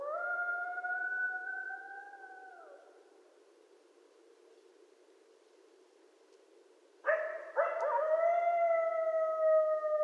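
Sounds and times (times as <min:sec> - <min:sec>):
coyote howl with brief yelp: 0:00.0 - 0:03.0, 0:07.1 - 0:10.0.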